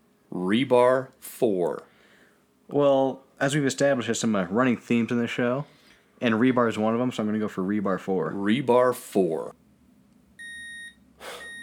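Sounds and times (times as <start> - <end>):
speech: 0.5 - 1.9, 2.7 - 9.6
electronic beep from a tender notification alert: 10.4 - 11.6.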